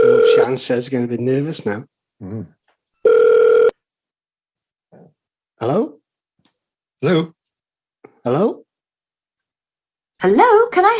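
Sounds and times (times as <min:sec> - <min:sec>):
telephone ringing tone on outgoing call: 0:00.0 - 0:00.6, 0:03.0 - 0:03.8
speech: 0:00.5 - 0:03.2, 0:05.6 - 0:06.0, 0:07.0 - 0:07.4, 0:08.2 - 0:08.6, 0:10.2 - 0:10.9.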